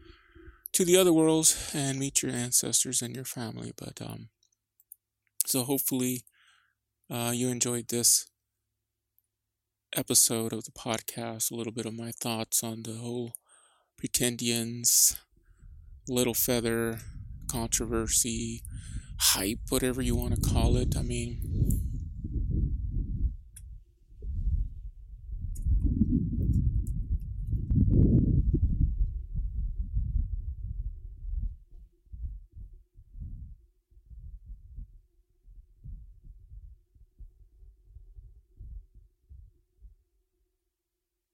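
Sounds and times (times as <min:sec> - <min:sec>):
speech: 0:00.7 - 0:04.4, 0:05.5 - 0:06.3, 0:07.1 - 0:08.3, 0:09.9 - 0:13.4, 0:14.0 - 0:15.3, 0:16.0 - 0:21.8
wind blowing through giant saguaro cactus: 0:15.6 - 0:39.5.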